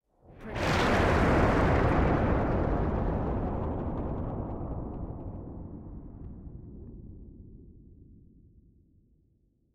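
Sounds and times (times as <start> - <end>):
nuclear explosion: 0.4 - 7.3.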